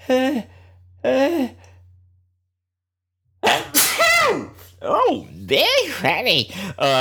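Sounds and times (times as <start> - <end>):
speech: 0.1 - 1.5, 5.5 - 6.9
loud sneeze: 3.4 - 4.7
breathy voiced build-up gasps: 6.5 - 6.8.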